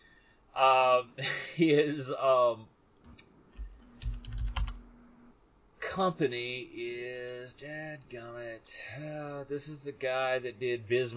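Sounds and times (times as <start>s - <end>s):
speech: 0.6s - 2.8s, 6.0s - 11.1s
laughter: 1.2s - 2.0s
typing on a computer keyboard during a Google search: 4.0s - 4.8s.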